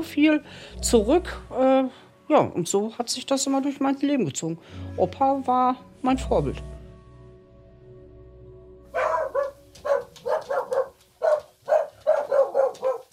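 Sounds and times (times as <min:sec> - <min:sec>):
speech: 0:00.0 - 0:06.7
dogs from Spain barking: 0:08.9 - 0:13.1.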